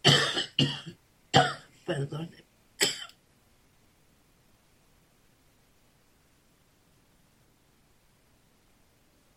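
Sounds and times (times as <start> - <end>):
sharp cough: 0.0 - 1.7, 2.8 - 3.1
faint steady hiss: 0.0 - 9.3
speech: 1.9 - 2.4.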